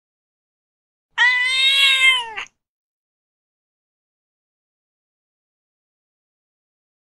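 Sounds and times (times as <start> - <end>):
cat meowing: 1.2 - 2.6.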